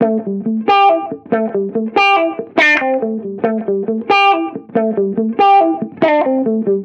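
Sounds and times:
reggae guitar loop in A major: 0.0 - 6.8.

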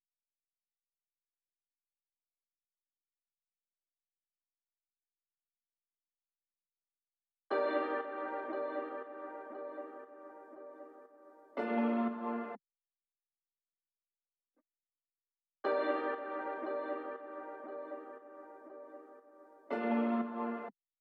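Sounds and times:
ambient melody loop in G minor: 7.5 - 12.6, 15.7 - 20.7.

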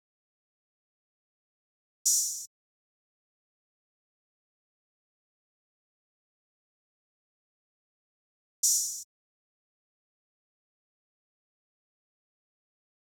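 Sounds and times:
drum loop at 146 BPM with open hi-hat: 2.1 - 2.4, 8.6 - 9.0.

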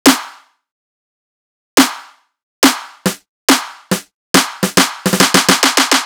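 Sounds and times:
snare drum: 0.1 - 0.5, 1.8 - 6.0
riddim drum loop at 140 BPM: 2.6 - 6.0.

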